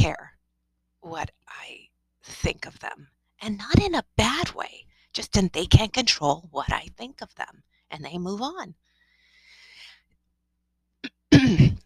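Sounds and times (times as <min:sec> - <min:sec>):
speech: 0:01.0 - 0:01.8, 0:02.4 - 0:08.8
raspy throat clearing: 0:11.0 - 0:11.8.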